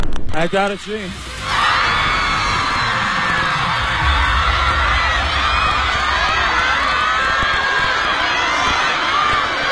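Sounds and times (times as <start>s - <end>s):
speech: 0.4s - 1.4s
crowd of many voices cheering and screaming: 1.2s - 9.6s.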